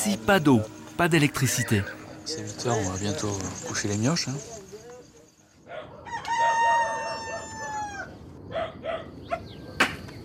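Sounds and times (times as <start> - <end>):
speech: 0.0 - 4.6
steady outdoor hiss: 0.0 - 10.2
rooster crowing: 5.7 - 8.3.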